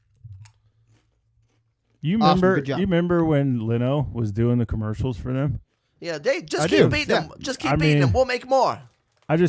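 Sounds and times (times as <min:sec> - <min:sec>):
crunching nacho cheese tortilla chips being eaten: 0:00.0 - 0:02.2, 0:08.3 - 0:09.4
speech: 0:02.0 - 0:09.4.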